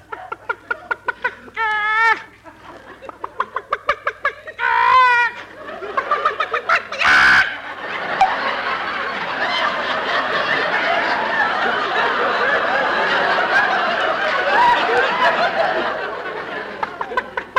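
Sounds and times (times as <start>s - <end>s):
laughter: 0.0s - 17.5s
chickens squawking: 3.1s - 7.7s.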